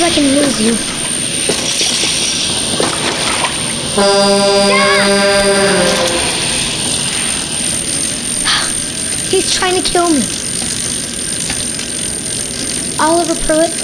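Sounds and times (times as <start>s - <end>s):
speech: 0.0s - 1.0s, 4.0s - 5.8s, 9.4s - 10.4s, 13.0s - 13.8s
drone buzzing with harmonic whine: 0.0s - 13.0s
steady roaring background: 0.0s - 13.8s.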